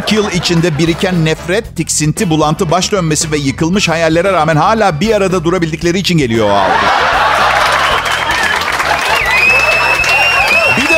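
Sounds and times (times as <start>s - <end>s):
laughter: 0.0s - 1.4s, 6.5s - 10.9s
speech: 0.1s - 7.4s
large audience applause: 6.7s - 10.9s
whistles and cheers from audience: 7.5s - 10.9s.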